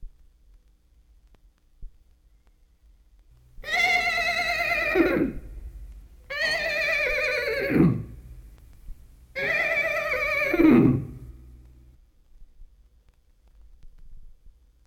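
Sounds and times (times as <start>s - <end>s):
horse whinnying: 3.6s - 5.6s, 6.3s - 8.2s, 9.4s - 11.4s.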